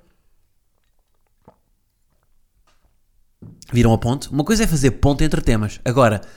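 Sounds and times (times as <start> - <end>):
person sipping water: 0.4 - 2.4
speech: 3.7 - 6.3.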